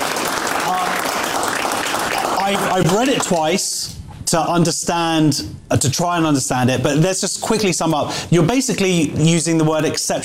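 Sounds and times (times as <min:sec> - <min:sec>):
audience applause: 0:00.0 - 0:03.4
speech: 0:02.5 - 0:10.2.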